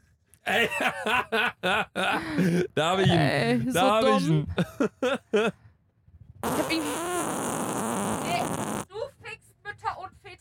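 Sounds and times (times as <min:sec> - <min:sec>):
laughter: 0:00.5 - 0:05.6
speech: 0:00.5 - 0:05.6
loud raspy fart: 0:06.4 - 0:08.9.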